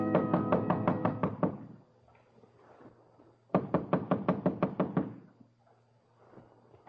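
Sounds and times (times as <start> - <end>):
loud rapid knocking on a door: 0.1 - 1.7, 3.5 - 5.2.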